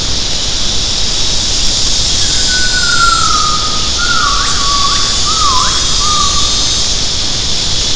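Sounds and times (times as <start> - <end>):
loud hiss: 0.0 - 7.9
gibbon call: 2.2 - 6.8.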